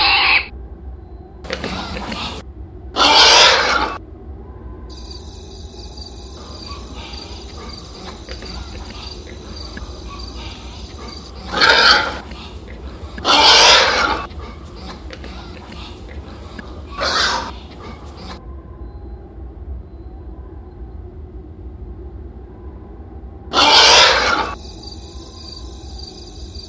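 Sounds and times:
faint hum: 0:00.0 - 0:26.6
steady low rumble: 0:00.5 - 0:23.5
hog grunting and squealing: 0:01.5 - 0:02.4, 0:03.0 - 0:04.0, 0:06.2 - 0:18.4, 0:23.5 - 0:24.6.

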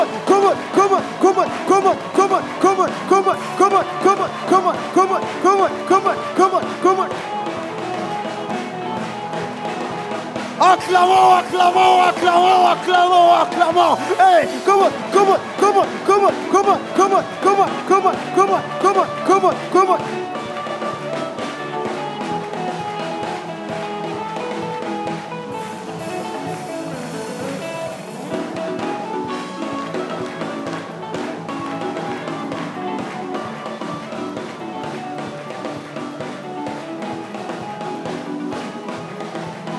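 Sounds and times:
audience shouting joyfully in acclamation: 0:00.0 - 0:07.5, 0:10.6 - 0:20.3
thumping beats: 0:00.0 - 0:39.7
speech: 0:11.7 - 0:20.3.

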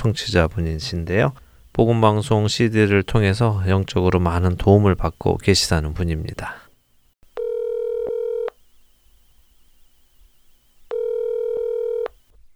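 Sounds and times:
speech: 0:00.0 - 0:06.6
faint telephone line hiss: 0:00.0 - 0:12.5
telephone electronic tones of a call being placed: 0:07.4 - 0:08.6, 0:10.9 - 0:12.2.

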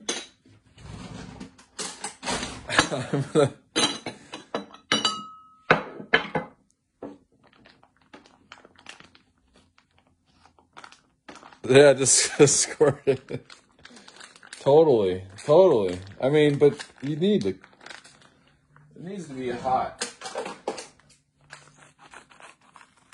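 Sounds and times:
speech: 0:02.7 - 0:03.6, 0:11.7 - 0:13.6, 0:14.6 - 0:17.7
dishes and a microwave bowl clattering and clinking as they're handled: 0:02.7 - 0:06.6.

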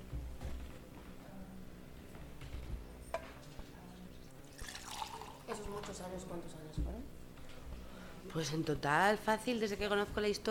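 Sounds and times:
water pouring into a glass: 0:04.6 - 0:05.6
speech: 0:05.5 - 0:07.2, 0:08.2 - 0:10.4.

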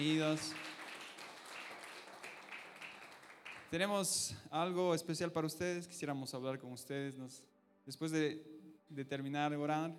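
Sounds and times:
speech: 0:00.0 - 0:00.7, 0:03.7 - 0:09.9
prayer-meeting audience applauding to welcome newcomers: 0:00.0 - 0:03.8.

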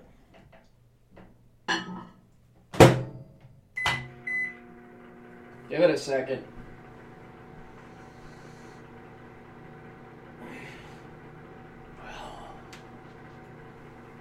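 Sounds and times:
kitchen clatter of cups, dishes and utensils: 0:01.7 - 0:02.2
steady low kitchen appliance hum: 0:03.7 - 0:14.1
speech: 0:05.7 - 0:06.5.

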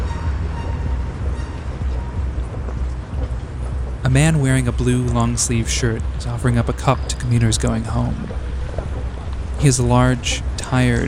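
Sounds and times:
metro station trains and escalators rumbling on a humid summer afternoon: 0:00.0 - 0:11.0
speech: 0:04.1 - 0:08.5, 0:09.6 - 0:11.0.

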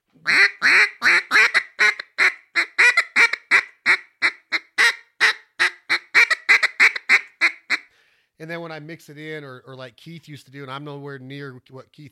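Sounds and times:
hen duck gack notes blown on a duck call: 0:00.3 - 0:07.9
speech: 0:08.4 - 0:12.0.

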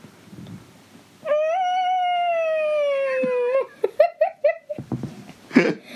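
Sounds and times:
person imitating a whale call with a moaning howl: 0:01.2 - 0:03.7
laughter: 0:03.2 - 0:04.9, 0:05.5 - 0:05.9.

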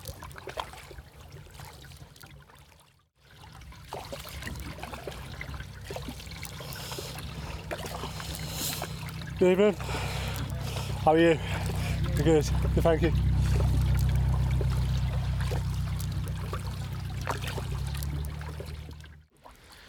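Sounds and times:
narrow boat diesel engine chugging on a river: 0:03.6 - 0:19.3
speech: 0:09.4 - 0:10.0, 0:11.0 - 0:11.6, 0:12.2 - 0:13.2.

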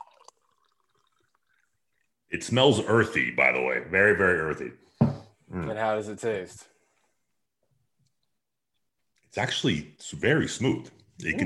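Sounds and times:
traditional Zambian wildflower honey mead poured into a glass: 0:00.0 - 0:02.3
speech: 0:02.3 - 0:04.9, 0:05.5 - 0:06.7, 0:09.3 - 0:11.4.

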